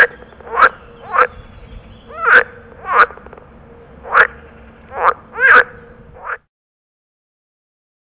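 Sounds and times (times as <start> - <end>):
water frog territorial call croaks: 0.0 - 1.4, 2.1 - 6.5.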